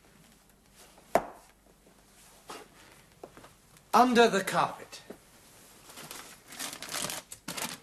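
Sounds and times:
speech: 0:04.0 - 0:04.9
crumpled paper rustling in a wastepaper basket: 0:05.8 - 0:07.8.

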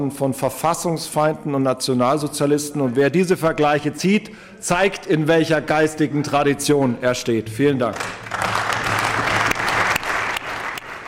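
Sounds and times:
speech: 0:00.0 - 0:08.5
sustained applause from a large assembly in a parliament: 0:08.0 - 0:11.0.

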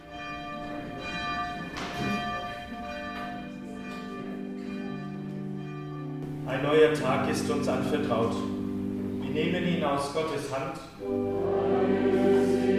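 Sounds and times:
church bell at the Protestant education centre on the Hesselberg ringing for morning devotion: 0:00.0 - 0:12.1
speech: 0:06.6 - 0:08.6, 0:09.4 - 0:11.5.

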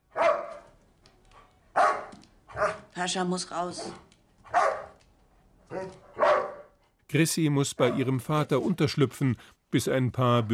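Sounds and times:
dog barking: 0:00.1 - 0:00.7, 0:01.7 - 0:03.0, 0:03.7 - 0:05.0, 0:05.7 - 0:06.8, 0:07.8 - 0:08.1
speech: 0:03.0 - 0:04.1, 0:05.8 - 0:06.0, 0:07.1 - 0:10.5.

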